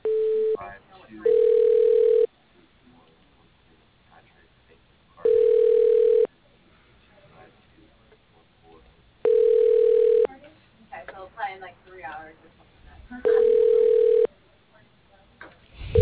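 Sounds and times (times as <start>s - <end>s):
telephone ringing tone while a call is being transferred: 1.2s - 2.3s, 5.2s - 6.3s, 9.2s - 10.3s, 13.3s - 14.3s.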